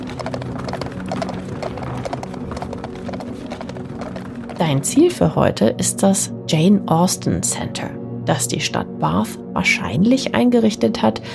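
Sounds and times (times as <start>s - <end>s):
hooves of a horse-drawn carriage clattering over cobblestones in Bath England: 0.0s - 5.4s
low rumble of carriage wheels: 0.0s - 5.6s
speech: 0.2s - 0.7s, 4.6s - 11.3s.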